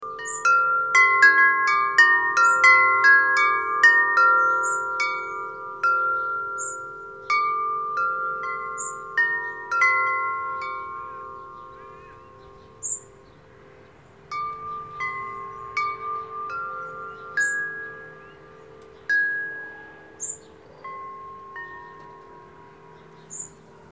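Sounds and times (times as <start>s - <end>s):
wind chimes: 0.0s - 23.9s.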